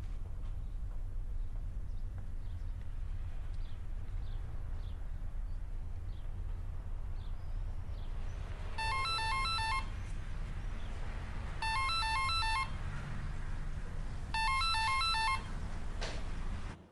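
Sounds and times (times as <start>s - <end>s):
low hum: 0.0s - 16.9s
telephone ringing in electronic bursts: 8.8s - 10.0s, 11.6s - 12.8s, 14.3s - 15.6s.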